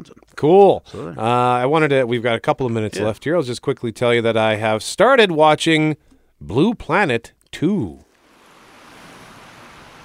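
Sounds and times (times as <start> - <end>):
speech: 0.4 - 8.0
ocean waves and surf: 8.2 - 10.0.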